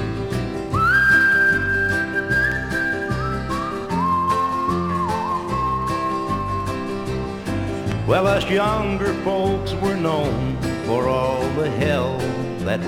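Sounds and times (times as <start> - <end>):
steady musical accompaniment: 0.0 - 12.8
grandmother whistling a slow hymn melody: 0.7 - 7.2
speech: 8.1 - 12.8.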